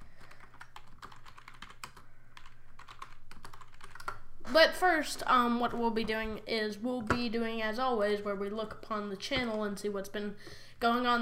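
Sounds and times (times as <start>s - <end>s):
typing on a computer keyboard: 0.1s - 4.2s
speech: 4.5s - 11.2s.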